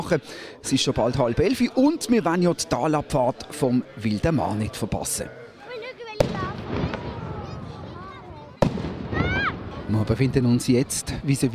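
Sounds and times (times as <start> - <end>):
lively crowd murmur outdoors: 0.0 - 11.5
speech: 0.1 - 5.4, 9.9 - 11.5
ceremonial Böller salute shots outdoors: 6.2 - 7.8, 8.6 - 9.9.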